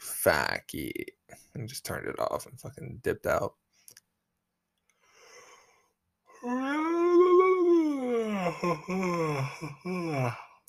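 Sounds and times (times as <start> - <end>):
speech: 0.2 - 3.6, 6.4 - 6.8, 8.5 - 10.5
yawning: 6.3 - 10.6.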